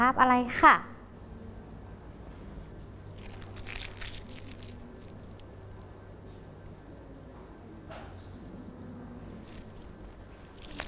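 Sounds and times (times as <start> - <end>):
speech: 0.0 - 0.9
thin multicoloured kite paper being scrunched by fingers into small balls: 2.6 - 5.9, 9.4 - 10.8.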